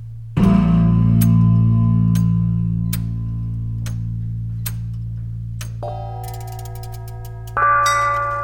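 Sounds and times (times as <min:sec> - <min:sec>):
deep bell ringing: 0:00.4 - 0:08.4
steady clock-like ticking: 0:02.1 - 0:03.2, 0:03.8 - 0:05.0, 0:05.6 - 0:08.4
brighter bell strikes: 0:05.8 - 0:08.4.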